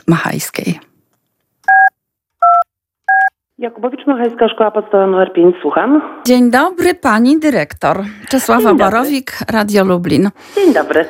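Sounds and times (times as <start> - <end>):
speech: 0.0 - 0.9, 3.6 - 11.0
telephone keypad tones as a number is dialed: 1.7 - 3.3.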